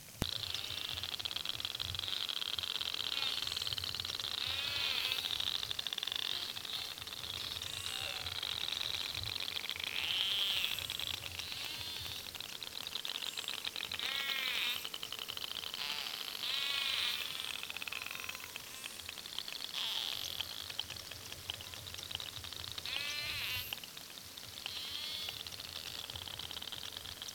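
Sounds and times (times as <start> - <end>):
narwhal: 0.2 - 12.5, 13.4 - 27.2.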